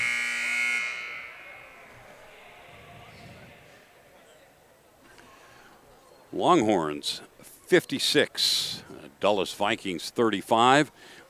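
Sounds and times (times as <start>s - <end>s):
loud harsh basketball arena end-of-quarter buzzer: 0.0s - 2.2s
faint commotion: 0.0s - 11.2s
noisy crowd murmur: 0.9s - 11.2s
speech: 6.3s - 11.2s.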